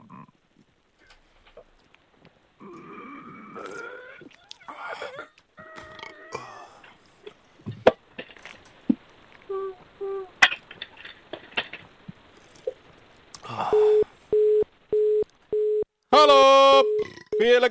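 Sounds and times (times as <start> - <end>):
telephone line beeps after caller disconnects: 13.7 - 15.8, 16.7 - 17.6
speech: 17.4 - 17.6.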